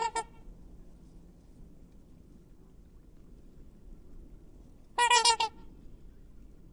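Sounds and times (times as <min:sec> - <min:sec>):
black swan Cygnus atratus honking: 0:00.0 - 0:00.4, 0:04.9 - 0:05.7.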